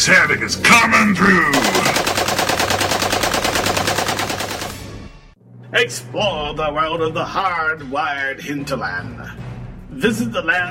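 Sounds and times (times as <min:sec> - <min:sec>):
speech: 0:00.0 - 0:02.0, 0:05.7 - 0:10.7
.50 caliber machine gun firing from a roof turret: 0:01.5 - 0:05.0.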